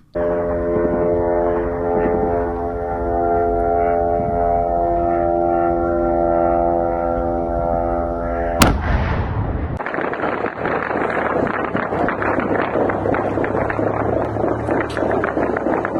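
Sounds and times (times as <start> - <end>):
kamikaze drone engine buzzing overhead over the Ukrainian capital: 0.0 - 9.7, 10.3 - 15.9
sharp loud bang: 8.6 - 13.8.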